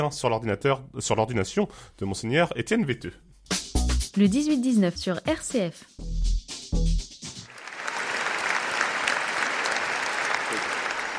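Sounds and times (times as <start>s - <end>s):
speech: 0.0s - 3.6s, 4.2s - 6.1s
cathedral audience applauding an auxiliary bishop at his ordination: 7.4s - 11.1s.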